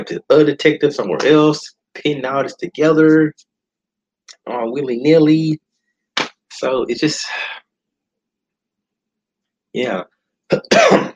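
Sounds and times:
speech: 0:00.0 - 0:03.5, 0:04.5 - 0:05.6, 0:06.6 - 0:07.6, 0:09.8 - 0:11.1
person coughing and clearing their throat: 0:10.5 - 0:11.1.

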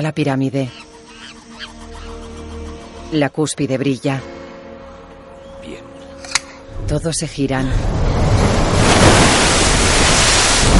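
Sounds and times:
speech: 0:00.0 - 0:00.9, 0:03.1 - 0:04.4, 0:06.8 - 0:08.1
rushing wall of water advancing: 0:07.7 - 0:10.7.

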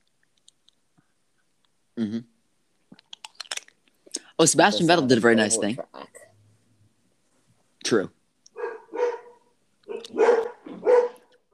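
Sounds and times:
speech: 0:02.0 - 0:02.3, 0:04.4 - 0:06.1, 0:07.9 - 0:08.2
dogs barking: 0:08.6 - 0:11.3.

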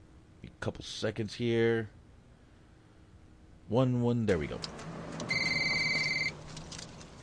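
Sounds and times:
faint hum: 0:00.0 - 0:07.2
speech: 0:00.6 - 0:02.0, 0:03.7 - 0:04.8
brick cell phone ringing with a high electronic tone: 0:05.3 - 0:06.4.

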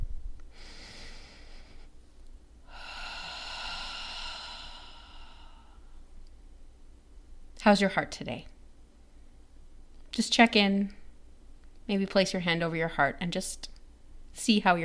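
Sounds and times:
slow deep inhale and exhale: 0:00.5 - 0:02.0, 0:02.6 - 0:06.1
speech: 0:07.7 - 0:08.5, 0:10.2 - 0:11.0, 0:11.9 - 0:13.7, 0:14.4 - 0:14.8.

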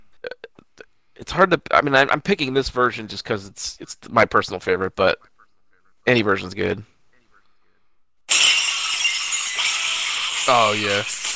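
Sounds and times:
speech: 0:01.2 - 0:05.3, 0:06.0 - 0:06.9, 0:10.5 - 0:11.3
glass shattering: 0:08.3 - 0:11.3
tinkling glass shards: 0:08.3 - 0:11.3.

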